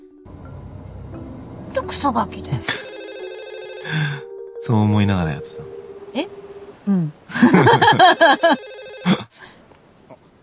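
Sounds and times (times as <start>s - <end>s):
speech: 1.8s - 2.8s, 3.8s - 5.6s, 6.9s - 9.2s
telephone ringing with bright warbling electronic tone: 1.8s - 3.9s, 7.9s - 9.1s
laughter: 7.3s - 9.3s.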